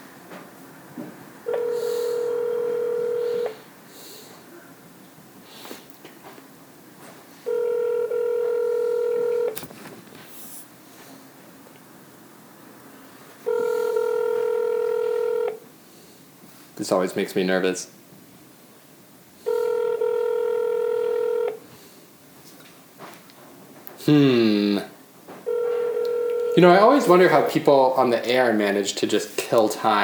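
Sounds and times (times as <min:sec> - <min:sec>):
faint hiss: 0:00.0 - 0:30.0
phone line ringing tones: 0:01.4 - 0:03.7, 0:07.4 - 0:09.6, 0:13.4 - 0:15.6, 0:19.4 - 0:21.7, 0:25.4 - 0:28.5
speech: 0:16.9 - 0:18.0, 0:26.6 - 0:30.0.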